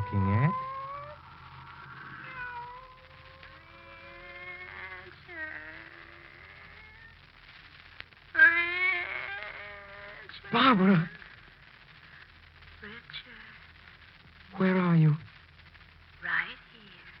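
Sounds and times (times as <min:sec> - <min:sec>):
cat meowing: 0:00.0 - 0:07.1, 0:08.4 - 0:10.4
faint low hum: 0:00.0 - 0:17.1
speech: 0:10.6 - 0:11.2.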